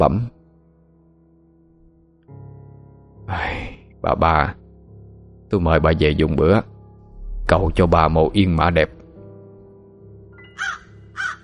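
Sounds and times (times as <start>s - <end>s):
speech: 0.0s - 0.4s, 3.3s - 4.6s, 5.5s - 6.7s, 7.5s - 9.0s
crow perched on a grave cawing: 10.5s - 11.4s.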